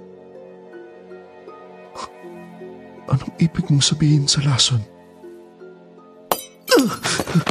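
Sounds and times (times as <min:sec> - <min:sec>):
speech: 0:02.0 - 0:05.0
clattering, tinkling glass shards: 0:06.3 - 0:06.9
glass shattering explosively: 0:06.3 - 0:07.4.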